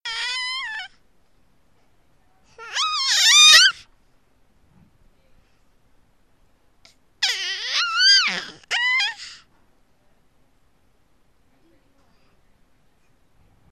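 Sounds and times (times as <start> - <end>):
baby: 0.0 - 1.0, 2.5 - 3.9, 6.8 - 9.5.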